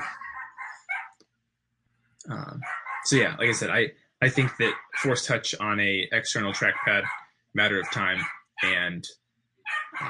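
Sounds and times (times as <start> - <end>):
dogs barking and yelping: 0.0 - 1.2, 2.6 - 3.6, 4.4 - 5.2, 6.4 - 8.8, 9.7 - 10.0
speech: 2.2 - 9.2
laughter: 2.3 - 8.9.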